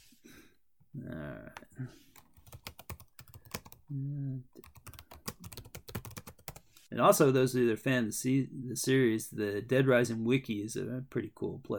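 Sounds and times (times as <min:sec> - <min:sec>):
person making short held vocal sounds: 0:00.9 - 0:02.0, 0:03.9 - 0:04.6
speech: 0:01.0 - 0:02.1, 0:07.0 - 0:11.7
typing on a computer keyboard: 0:02.2 - 0:03.8, 0:04.6 - 0:06.6.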